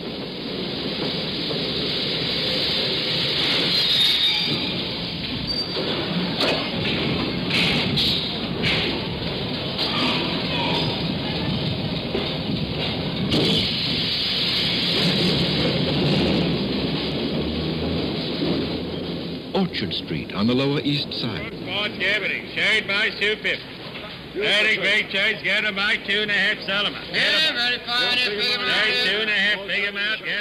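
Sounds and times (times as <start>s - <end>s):
subway train emerging from tunnel and stopping: 0.0s - 30.3s
subway train clanks and screeches: 3.4s - 9.0s, 9.8s - 11.1s
speech: 20.0s - 23.7s, 24.4s - 30.3s.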